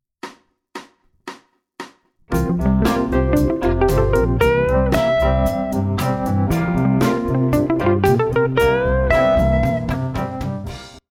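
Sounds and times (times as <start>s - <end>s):
Mixolydian melodic lick: 2.3s - 10.8s.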